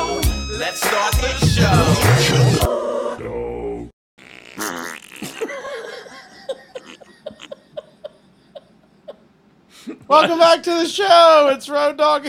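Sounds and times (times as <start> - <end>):
speech: 0.6 - 2.6, 10.1 - 12.2
fart: 4.2 - 5.6
person laughing: 4.4 - 9.3.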